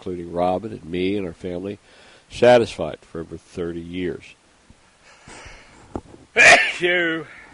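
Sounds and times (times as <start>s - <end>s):
speech: 0.0s - 4.4s, 6.4s - 7.5s
loud sneeze: 6.4s - 7.4s.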